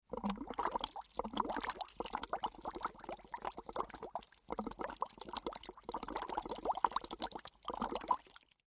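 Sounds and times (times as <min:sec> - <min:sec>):
blowing water bubbles through a straw: 0:00.0 - 0:08.6.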